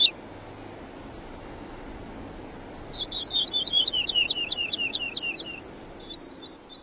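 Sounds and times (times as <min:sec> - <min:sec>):
woodlark singing: 0:00.0 - 0:06.8.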